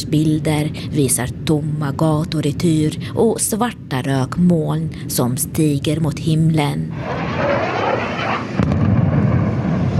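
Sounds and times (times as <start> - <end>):
speech: 0.0 - 8.1
heavy low rumble: 6.9 - 9.9
sharp explosion blast: 6.9 - 9.9.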